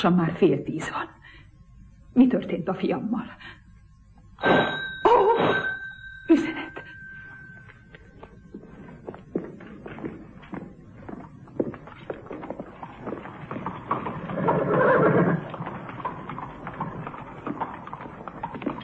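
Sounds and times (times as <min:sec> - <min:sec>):
speech: 0:00.0 - 0:01.2, 0:02.2 - 0:03.6, 0:04.4 - 0:05.7, 0:06.3 - 0:06.7
hoofbeats of a walking carriage horse: 0:07.6 - 0:18.8
horse pulling a closed carriage whinnying: 0:13.9 - 0:16.4.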